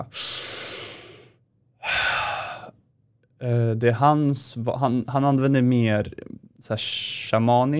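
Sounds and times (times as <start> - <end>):
deep forceful breath in a Wim Hof style breathwork technique: 0.1 - 2.8
speech: 3.4 - 7.7.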